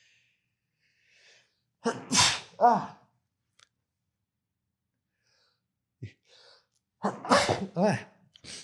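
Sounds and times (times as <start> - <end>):
person sneezing: 1.8 - 2.9, 7.0 - 8.6.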